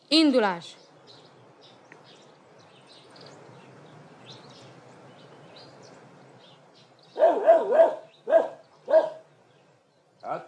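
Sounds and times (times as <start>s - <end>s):
speech: 0.1s - 0.8s, 7.2s - 9.1s, 10.3s - 10.4s
angry dog barking: 7.2s - 9.3s.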